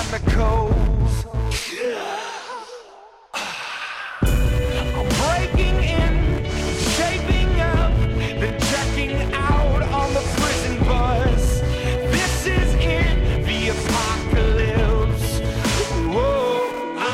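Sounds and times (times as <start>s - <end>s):
rock song with heavy drums and layered vocals: 0.0s - 1.6s, 4.2s - 17.1s
speech: 0.1s - 0.8s
breathy airy sound: 1.8s - 7.0s, 7.8s - 8.7s, 11.3s - 13.6s, 15.2s - 16.0s.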